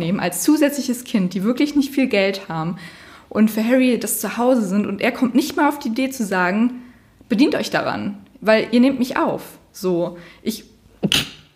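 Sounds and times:
speech: 0.0 - 11.3
sneeze: 11.0 - 11.5.

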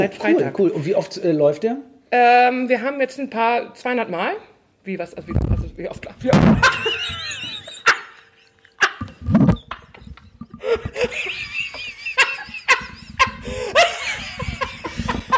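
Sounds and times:
speech: 0.0 - 6.9
microphone toppling over with thuds and rattling knocks: 5.2 - 7.0, 9.0 - 11.0
people laughing: 6.4 - 15.3.

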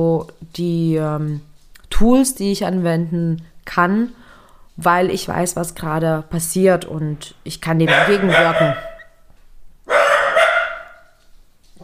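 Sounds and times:
speech: 0.0 - 4.2, 4.8 - 8.9
dachshund barking: 7.9 - 9.2, 9.9 - 11.2.

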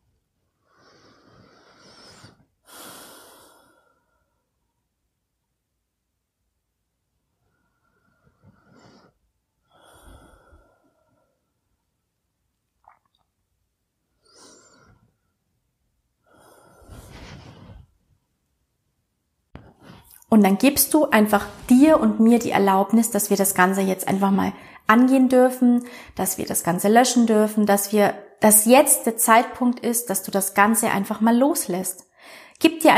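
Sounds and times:
deep breathing in and out: 0.6 - 4.6, 7.3 - 11.8, 14.1 - 15.4, 16.2 - 18.0, 24.6 - 24.9, 25.8 - 26.2, 32.1 - 32.6
speech: 20.3 - 32.9.

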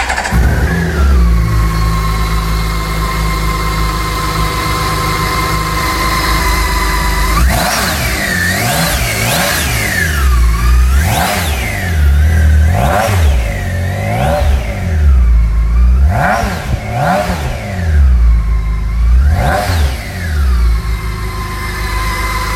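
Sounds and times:
six-cylinder K1600 motorcycle engine idling and revving: 0.0 - 22.5.

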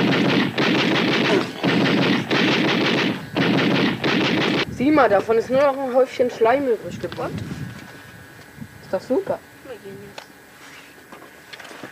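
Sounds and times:
video game gunfire: 0.0 - 4.6
speech: 5.0 - 7.5, 8.9 - 10.2.

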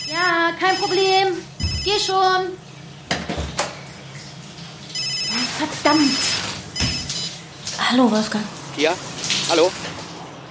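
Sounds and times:
mobile phone ringing with an electronic ringtone: 0.0 - 2.1, 4.9 - 7.4
speech: 0.5 - 2.6, 5.8 - 6.5, 7.9 - 9.9
clattering kitchen knocks: 3.1 - 3.8.

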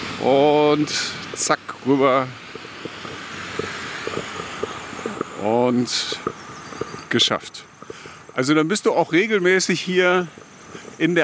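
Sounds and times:
traffic roar from cars passing on a nearby street: 0.0 - 11.2
wind buffeting the microphone: 0.0 - 11.2
speech: 0.2 - 2.5, 5.4 - 6.4, 7.1 - 7.7, 8.4 - 10.4, 11.0 - 11.2.

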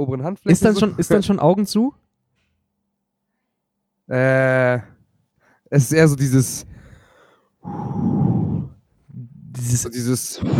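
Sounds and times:
speech: 0.0 - 2.0, 4.1 - 4.9, 5.7 - 6.8, 7.6 - 8.1, 9.6 - 10.5
person imitating heavy exhausted breathing: 6.4 - 9.8, 10.4 - 10.5.

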